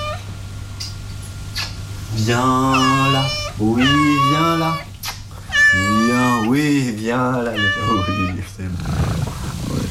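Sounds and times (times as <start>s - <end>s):
cat giving a short rising meow: 0.0s - 0.2s, 2.6s - 4.9s, 5.5s - 6.6s, 7.4s - 8.4s
steady low electrical hum: 0.0s - 9.9s
speech: 2.2s - 4.9s, 5.7s - 9.3s
cat chirping softly: 2.6s - 6.6s, 7.4s - 8.4s.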